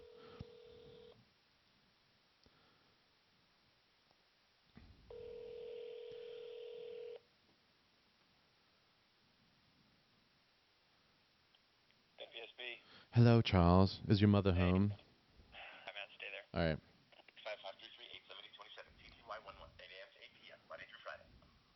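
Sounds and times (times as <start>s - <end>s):
electronic telephone dialing tones placing a call to a radio station hotline: 0.0s - 1.2s, 5.1s - 7.2s
speech: 12.3s - 15.0s, 16.6s - 16.9s.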